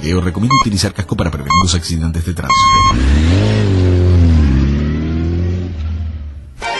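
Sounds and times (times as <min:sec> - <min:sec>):
speech: 0:00.0 - 0:04.4
motorcycle engine revving: 0:02.5 - 0:06.6.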